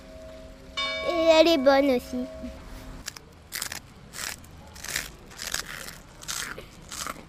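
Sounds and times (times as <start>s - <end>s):
speech: 1.1s - 2.6s
biting into a crunchy rusk: 3.1s - 7.2s
chewing: 3.5s - 7.2s.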